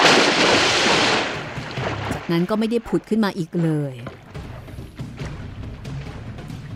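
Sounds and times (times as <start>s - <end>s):
heavy splash of a demon leaping backward into water: 0.0s - 2.4s
speech: 2.3s - 4.2s.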